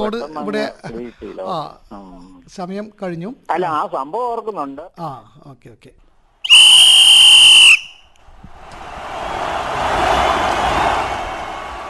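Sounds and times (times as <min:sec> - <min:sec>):
speech: 0:00.0 - 0:07.7
referee's final whistle at a football match: 0:06.5 - 0:08.1
broad rushing noise: 0:08.4 - 0:11.8.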